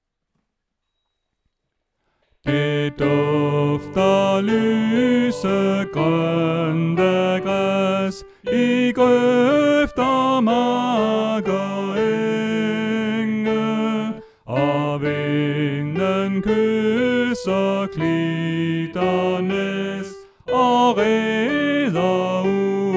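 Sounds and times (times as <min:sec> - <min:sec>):
soprano: 0:02.5 - 0:22.9.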